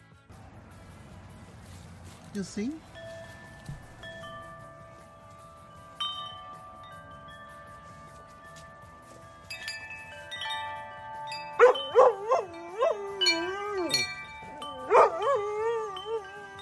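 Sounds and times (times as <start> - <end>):
speech: 2.3 - 2.9
wind chimes rung by a playing puppy: 2.3 - 16.5
puppy whining and yipping: 11.5 - 16.5.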